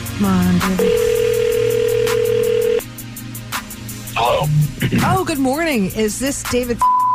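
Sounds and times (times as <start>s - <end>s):
speech: 0.2s - 1.1s, 4.4s - 6.9s
telephone ringback tone during an outgoing call: 0.8s - 2.8s.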